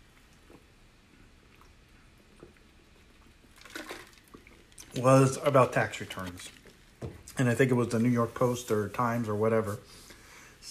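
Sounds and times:
person drinking water: 0:00.0 - 0:05.0
slurp and swallow: 0:00.0 - 0:05.0
speech: 0:05.0 - 0:06.6, 0:07.4 - 0:10.0.

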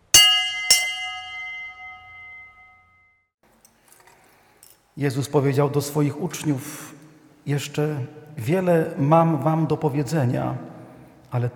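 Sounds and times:
church bell ringing: 0:00.0 - 0:03.1
speech: 0:05.0 - 0:10.7, 0:11.3 - 0:11.5.

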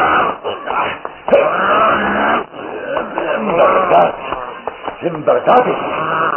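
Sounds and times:
person imitating furious wolf-like werewolf growling: 0:00.0 - 0:04.2, 0:05.7 - 0:06.3
speech: 0:05.0 - 0:06.0.

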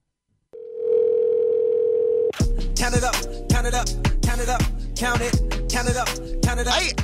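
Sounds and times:
telephone dial tone: 0:00.6 - 0:02.4
speech: 0:02.9 - 0:07.0.

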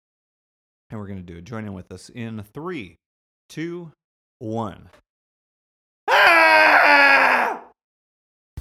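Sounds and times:
speech: 0:00.9 - 0:05.0
cathartic human scream: 0:06.1 - 0:07.7.

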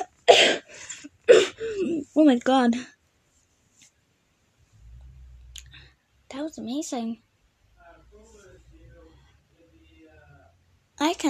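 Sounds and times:
person coughing: 0:00.0 - 0:02.0
speech: 0:02.2 - 0:03.0, 0:06.4 - 0:07.2, 0:11.0 - 0:11.2.

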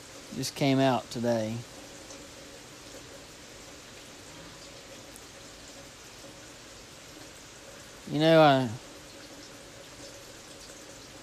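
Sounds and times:
rain falling: 0:00.0 - 0:11.2
speech: 0:00.4 - 0:01.7, 0:08.1 - 0:08.8.

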